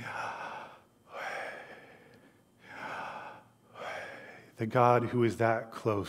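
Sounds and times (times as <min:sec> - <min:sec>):
slow deliberate breaths close to the microphone: 0:00.0 - 0:04.6
speech: 0:04.6 - 0:06.0.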